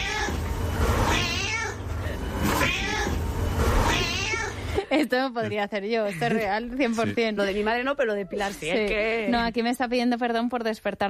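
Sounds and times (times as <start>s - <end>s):
cat meowing in long drawn-out wails: 0.0s - 0.4s, 1.0s - 1.8s, 2.5s - 4.6s
speech: 5.0s - 11.0s.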